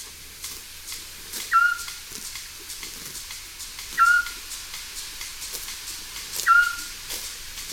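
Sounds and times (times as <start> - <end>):
faint insect-like hiss in a quiet night background: 0.0 - 7.7
Eurasian scops owl giving short clear whistled notes: 1.5 - 2.0, 4.0 - 4.4, 6.4 - 7.0.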